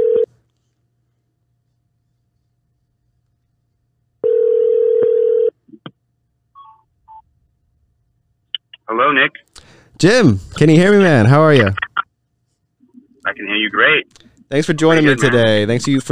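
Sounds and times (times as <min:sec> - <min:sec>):
telephone ringing tone while placing a call: 0:00.0 - 0:00.3, 0:04.2 - 0:05.6
speech: 0:09.1 - 0:11.8, 0:13.4 - 0:16.1.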